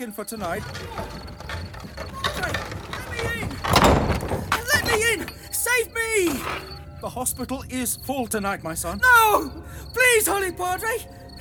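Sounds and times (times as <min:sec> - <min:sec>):
speech: 0:00.0 - 0:01.3, 0:05.1 - 0:11.2
heavy door thudding shut: 0:00.4 - 0:05.6.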